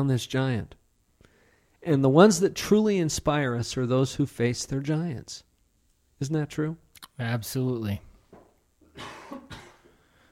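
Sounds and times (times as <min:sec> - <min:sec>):
speech: 0:00.0 - 0:00.8, 0:01.8 - 0:05.5, 0:06.2 - 0:08.1
person coughing: 0:08.8 - 0:10.0.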